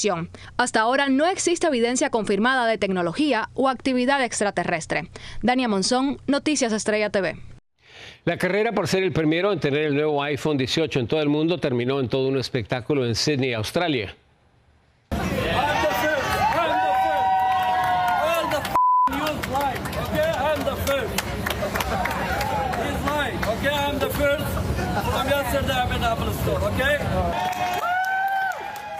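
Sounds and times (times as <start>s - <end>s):
speech: 0.0s - 14.2s
many overlapping voices shouting and chattering: 15.1s - 17.3s, 18.2s - 27.5s
crowd commotion: 15.1s - 27.9s
electronic beeps: 18.8s - 19.1s.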